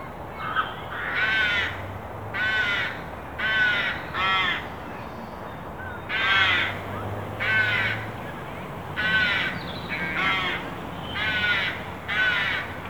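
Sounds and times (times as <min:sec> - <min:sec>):
carrion crow Corvus corone giving harsh raspy caws: 0:00.4 - 0:01.8, 0:02.4 - 0:04.6, 0:06.1 - 0:06.8, 0:07.4 - 0:08.1, 0:09.0 - 0:12.8.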